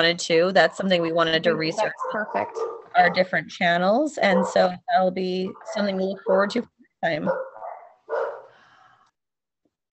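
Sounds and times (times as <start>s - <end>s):
speech: 0.0s - 7.5s
single sharp dog bark: 1.4s - 3.5s, 4.2s - 4.9s, 5.5s - 6.6s, 7.2s - 8.6s.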